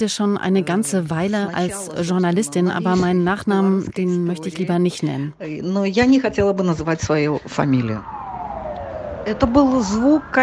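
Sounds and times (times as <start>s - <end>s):
speech: 0.0s - 8.2s, 9.2s - 10.4s
ambulance siren wailing along the street: 7.6s - 10.4s.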